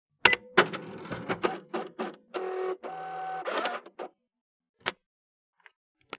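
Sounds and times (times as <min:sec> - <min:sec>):
somewhat old cash register sounds: 0:00.2 - 0:04.1.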